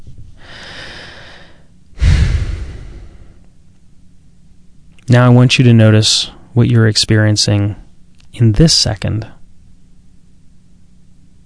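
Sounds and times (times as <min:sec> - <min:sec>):
deep human breath inhale and exhale: 0:00.4 - 0:03.5
speech: 0:05.1 - 0:07.8, 0:08.4 - 0:09.4.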